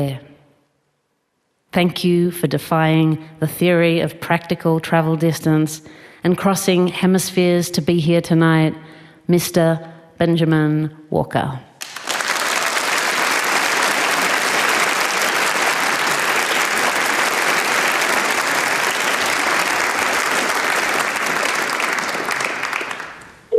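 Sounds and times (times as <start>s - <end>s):
speech: 0.0s - 0.3s, 1.7s - 11.7s
loud sustained applause: 11.8s - 23.4s.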